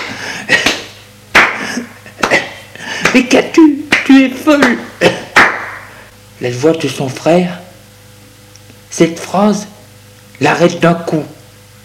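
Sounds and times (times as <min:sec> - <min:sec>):
slaps on a body: 0:00.0 - 0:02.4, 0:03.0 - 0:03.3, 0:03.9 - 0:05.9
speech: 0:03.1 - 0:05.2, 0:06.4 - 0:07.6, 0:08.9 - 0:09.7, 0:10.4 - 0:11.4.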